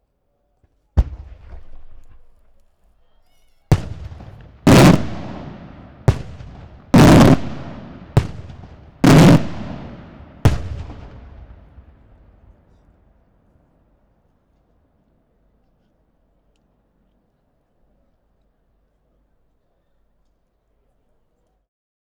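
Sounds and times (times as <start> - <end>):
very strong fireworks blast in Malta: 1.0 - 2.7, 3.7 - 13.4
fireworks crackling and sparkling in Malta: 1.0 - 12.8.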